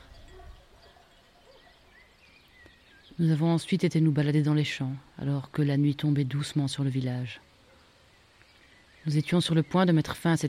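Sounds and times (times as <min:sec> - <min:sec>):
sheep bells clanking and jingling: 0:00.0 - 0:01.5
soft outdoor rumble: 0:00.0 - 0:10.4
speech: 0:03.2 - 0:07.5, 0:09.0 - 0:10.4.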